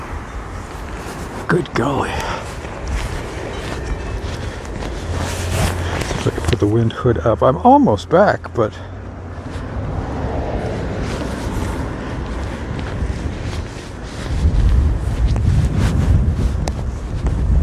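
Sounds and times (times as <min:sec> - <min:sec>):
speech: 0:01.5 - 0:02.4, 0:06.2 - 0:08.9
strong wind buffeting the microphone: 0:02.4 - 0:06.6, 0:09.7 - 0:17.6.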